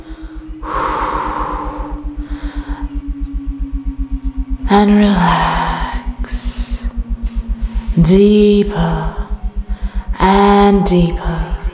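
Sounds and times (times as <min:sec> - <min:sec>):
slow breathy exhale during a guided breathing exercise: 0:00.0 - 0:03.0
low pulsing tone: 0:00.0 - 0:11.7
speech: 0:04.7 - 0:05.6, 0:08.0 - 0:09.2, 0:10.3 - 0:11.4.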